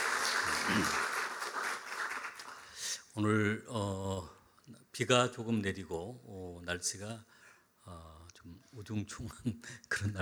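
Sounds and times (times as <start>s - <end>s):
audience at a church worship service applauding: 0.0s - 2.6s
speech: 0.7s - 1.0s, 3.2s - 10.2s.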